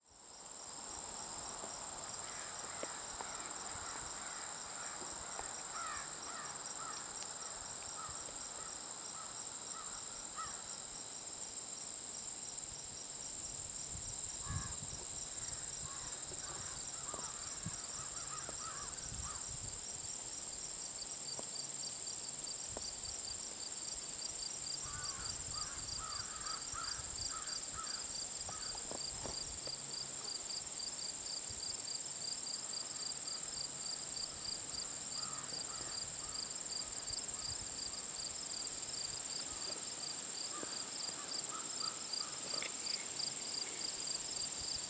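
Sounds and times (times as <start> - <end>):
crickets chirping: 0.1 - 44.8
crows cawing: 5.7 - 7.1, 9.8 - 10.6, 15.8 - 19.4, 24.8 - 28.8, 35.2 - 36.0, 40.5 - 42.5.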